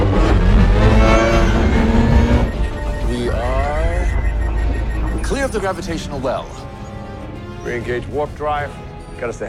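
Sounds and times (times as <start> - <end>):
spaceship rear thrusters roaring as the vessel turns away from the sun: 0.0 - 7.2
speech: 5.6 - 6.6, 7.6 - 9.4.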